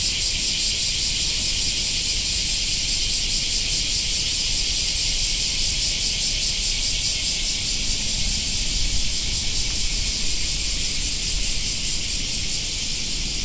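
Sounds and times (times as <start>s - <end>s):
black cicada chorus buzzing: 0.0s - 13.4s.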